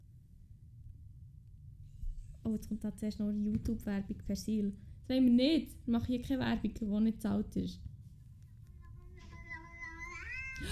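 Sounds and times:
speech: 2.4s - 7.9s
cat meowing long and drawn-out: 9.1s - 10.7s.

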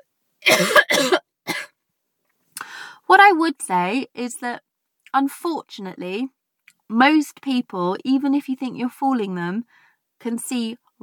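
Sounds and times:
person coughing with sharp hacking coughs: 0.4s - 1.7s
speech: 3.1s - 11.0s.

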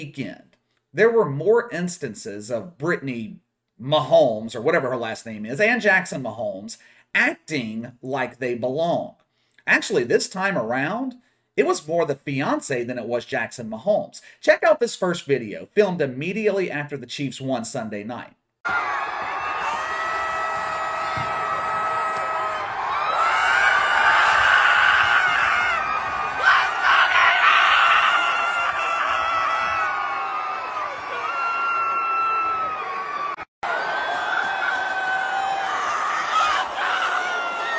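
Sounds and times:
speech: 0.0s - 19.3s
excited screams and shouts in a stadium crowd: 18.6s - 37.7s
large stadium crowd cheering after a win: 18.6s - 37.7s.

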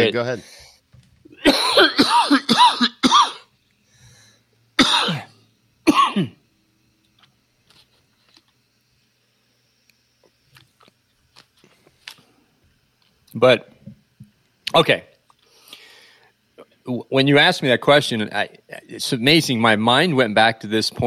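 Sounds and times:
speech: 0.0s - 0.6s, 13.4s - 13.7s, 14.7s - 15.1s, 16.9s - 21.0s
harsh coughing fit: 1.4s - 3.5s, 4.8s - 6.4s.

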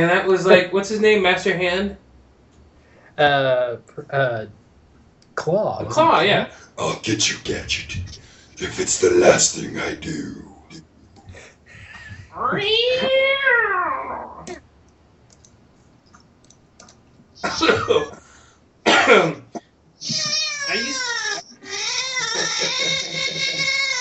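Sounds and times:
speech: 0.0s - 2.0s, 3.2s - 4.6s, 5.4s - 10.5s, 12.4s - 14.7s, 17.4s - 18.2s, 19.1s - 19.4s
cat meowing with long, wavering yowls: 12.3s - 14.6s, 20.0s - 23.9s
laughter: 17.4s - 18.2s, 21.5s - 23.9s.

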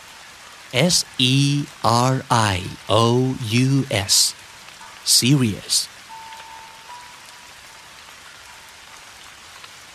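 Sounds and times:
rain pattering on hard surfaces at a small temple in Japan: 0.0s - 9.9s
speech: 0.7s - 4.4s, 5.0s - 5.9s.

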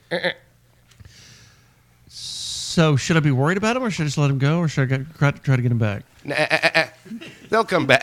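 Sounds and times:
speech: 0.1s - 0.4s, 2.8s - 8.0s
goat bleating: 6.2s - 7.0s.

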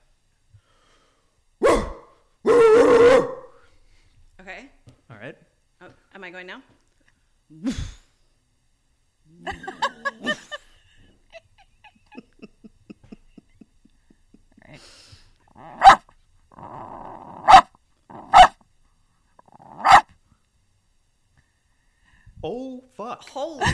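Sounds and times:
person imitating a barking dog: 1.6s - 3.4s, 7.5s - 8.0s, 9.3s - 10.6s, 15.5s - 18.5s
speech: 6.3s - 6.8s, 7.5s - 8.0s
laughter: 9.3s - 14.8s.

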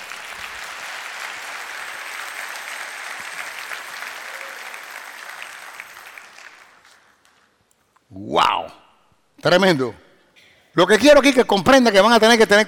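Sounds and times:
congregation applauding: 0.0s - 7.4s
speech: 8.2s - 8.8s, 9.4s - 10.0s, 10.8s - 12.6s.

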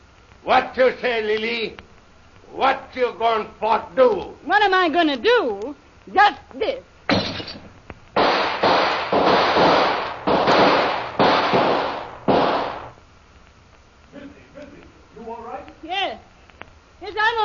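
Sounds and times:
speech: 0.4s - 1.8s, 2.5s - 7.4s
gunshots fired through a window: 7.1s - 7.6s, 8.2s - 13.0s.

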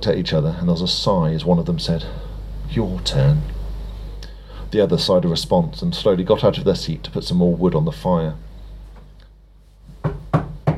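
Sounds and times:
speech: 0.0s - 3.6s, 4.7s - 8.5s
firm knocks on a wooden front door: 10.0s - 10.7s.

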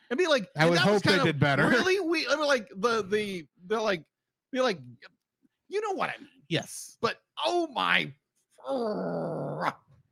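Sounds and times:
speech: 0.1s - 9.8s
dog growling: 8.7s - 9.8s.

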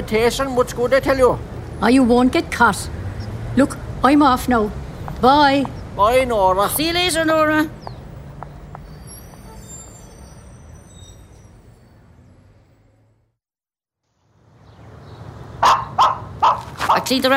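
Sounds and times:
speech: 0.0s - 3.0s, 3.6s - 7.8s, 17.1s - 17.3s
dog barking: 15.6s - 17.1s.

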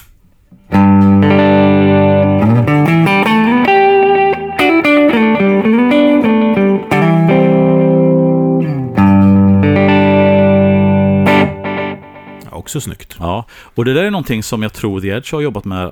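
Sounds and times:
electric guitar melody with short slapback delay and reverb: 0.7s - 12.5s
speech: 12.7s - 15.9s.

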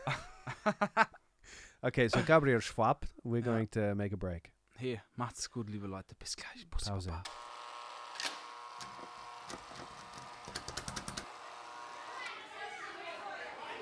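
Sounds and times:
laughter: 0.0s - 1.2s, 12.5s - 13.8s
speech: 0.1s - 1.0s, 1.8s - 7.4s
children playing outdoors and chattering: 12.0s - 13.8s.

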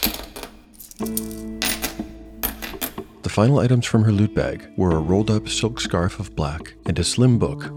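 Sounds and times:
coins being set down and stacked on a hard table: 0.0s - 3.1s
speech: 1.0s - 1.2s, 3.4s - 7.7s.

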